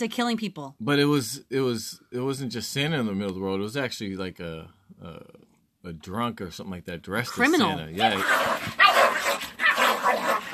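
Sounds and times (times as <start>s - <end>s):
speech: 0.0s - 8.8s
dogs fighting and barking: 8.0s - 10.5s.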